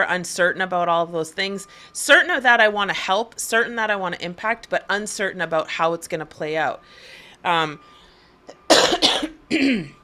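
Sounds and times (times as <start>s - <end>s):
speech: 0.0s - 8.0s, 9.0s - 10.0s
person coughing harshly: 8.7s - 10.0s.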